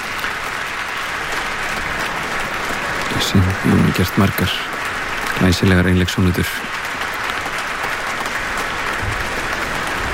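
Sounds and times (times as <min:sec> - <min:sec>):
concert audience applause for a solo performer after an encore: 0:00.0 - 0:10.1
speech: 0:03.2 - 0:04.8, 0:05.4 - 0:06.8.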